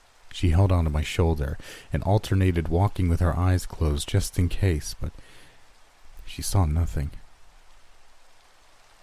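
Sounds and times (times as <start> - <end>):
heavy rain roaring: 0.0 - 9.0
speech: 0.4 - 5.3, 6.3 - 7.2.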